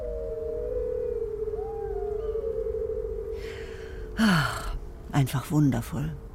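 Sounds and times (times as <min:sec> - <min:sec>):
several wolves howling together: 0:00.0 - 0:04.2
speech: 0:04.2 - 0:04.6, 0:05.2 - 0:06.2.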